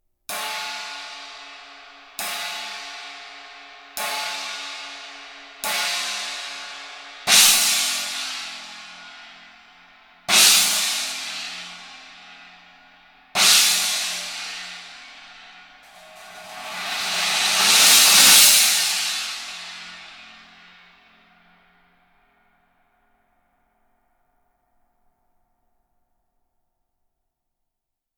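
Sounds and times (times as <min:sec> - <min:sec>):
20in rock china cymbal: 0:00.3 - 0:22.1.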